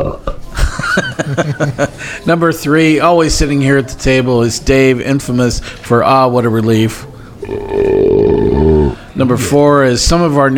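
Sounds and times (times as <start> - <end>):
laughter: 0.0 - 2.3
speech: 1.2 - 7.9, 9.2 - 10.5
short belch with low guttural rumble: 7.4 - 9.5.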